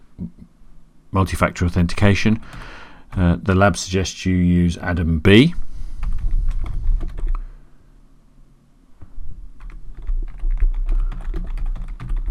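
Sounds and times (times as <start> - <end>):
speech: 1.1 - 5.6
typing on a computer keyboard while entering account details: 6.0 - 7.4, 9.6 - 12.2.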